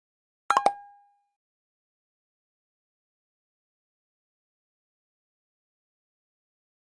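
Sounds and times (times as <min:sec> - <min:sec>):
triple guitar pop up element: 0:00.5 - 0:01.1.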